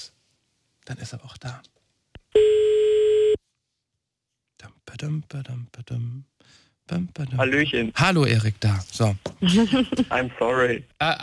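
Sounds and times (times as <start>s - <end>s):
speech: 0.9s - 2.4s, 5.0s - 11.2s
electronic mobile phone ringing tone during a live radio broadcast: 2.4s - 3.4s.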